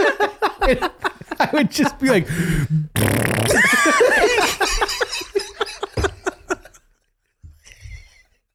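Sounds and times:
laughter: 0:00.0 - 0:02.3, 0:03.5 - 0:07.0
speech: 0:00.7 - 0:04.4
voice imitating fart noises with the mouth: 0:02.9 - 0:03.8.

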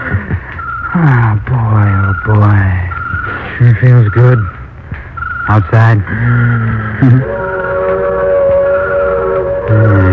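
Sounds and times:
speech: 0:01.0 - 0:02.8, 0:03.5 - 0:04.6, 0:05.5 - 0:07.5
deep freight train horn blasts: 0:07.0 - 0:10.1
freight train whistle: 0:07.1 - 0:10.1.

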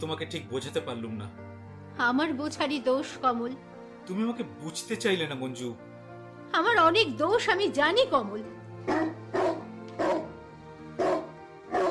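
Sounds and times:
speech: 0:00.0 - 0:05.9, 0:06.5 - 0:09.1
dog barking: 0:08.9 - 0:10.3, 0:11.0 - 0:11.8.

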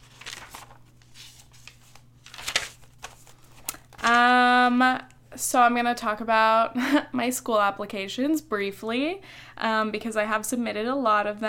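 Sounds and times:
notebook pages being turned: 0:00.0 - 0:04.2
faint steady hum: 0:00.0 - 0:11.4
speech: 0:04.1 - 0:11.4.

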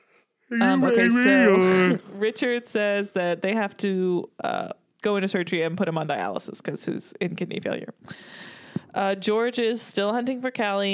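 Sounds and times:
quiet breath: 0:00.0 - 0:00.5, 0:08.0 - 0:09.0
person yawning: 0:00.5 - 0:02.2
speech: 0:00.5 - 0:10.9.

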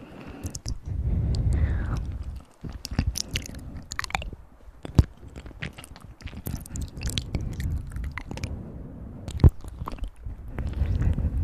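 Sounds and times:
soft low breathy rumbles: 0:00.0 - 0:04.0, 0:08.4 - 0:11.4
wet mouth clicks, smacks and chewing-like crunches: 0:00.0 - 0:11.4.

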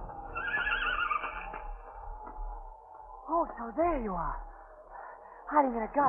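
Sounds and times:
low steady rumble of wind as a storm approaches: 0:00.0 - 0:06.0
mare whinnying in a gully on a ranch: 0:00.3 - 0:01.6
speech: 0:03.4 - 0:04.5, 0:05.5 - 0:06.0.

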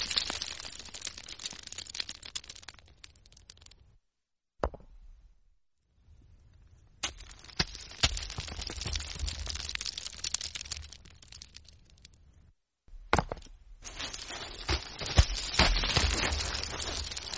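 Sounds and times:
stones clattering and clicking against each other: 0:00.0 - 0:03.8, 0:07.0 - 0:12.2, 0:13.0 - 0:17.3.

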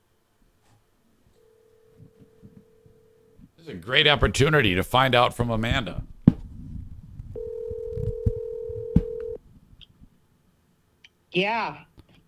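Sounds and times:
phone line ringing with a steady tone: 0:01.4 - 0:03.4, 0:07.4 - 0:09.4
speech: 0:03.6 - 0:06.1, 0:11.4 - 0:11.9.

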